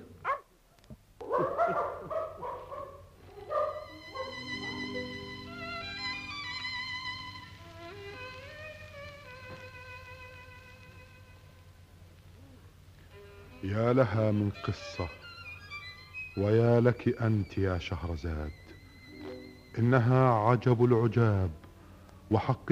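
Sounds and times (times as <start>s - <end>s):
dog barking and yelping in an agitated burst: 0.2s - 0.5s, 1.2s - 5.2s
laughter: 1.3s - 2.3s
sustained ringing tonal music: 3.7s - 8.7s, 13.1s - 22.4s
speech: 13.7s - 15.2s, 16.4s - 18.7s, 19.8s - 21.6s, 22.3s - 22.7s.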